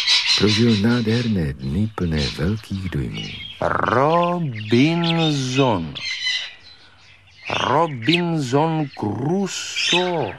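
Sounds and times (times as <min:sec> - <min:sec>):
parrot giving loud harsh squawks and higher chirping notes: 0:00.0 - 0:06.6, 0:07.4 - 0:08.6
speech: 0:00.4 - 0:06.4, 0:07.5 - 0:10.3.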